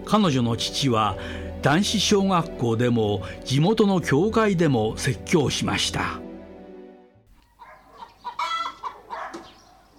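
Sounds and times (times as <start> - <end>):
speech: 0.1 - 6.2
live chicken clucking: 7.6 - 9.9.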